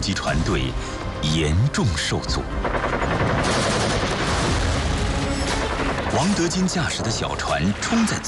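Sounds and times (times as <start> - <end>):
speech: 0.0 - 3.6, 6.2 - 8.2
machine gun firing from a bunker at boats crossing a river at night: 2.6 - 7.1.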